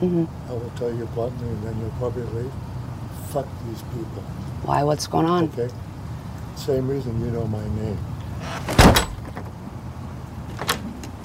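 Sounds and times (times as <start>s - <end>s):
speech: 0.0s - 2.7s, 3.3s - 5.9s, 6.6s - 8.8s
quiet outdoor ambience: 0.0s - 11.2s
door slamming shut: 8.5s - 9.5s.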